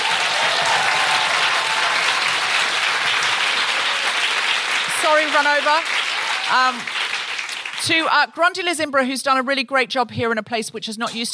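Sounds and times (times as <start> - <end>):
large audience applauding: 0.0 - 8.0
speech: 5.1 - 7.0, 7.8 - 11.3.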